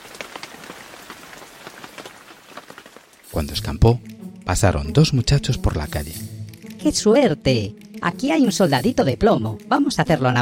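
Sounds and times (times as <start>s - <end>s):
heavy rain on a hard surface: 0.0s - 3.4s
speech: 3.4s - 10.4s.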